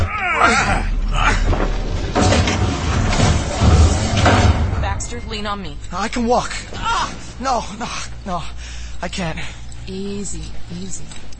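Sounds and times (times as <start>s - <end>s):
heavy metal elevator doors forced apart with the butt of a weapon: 0.0s - 7.6s
speech: 0.5s - 0.9s, 5.3s - 11.3s.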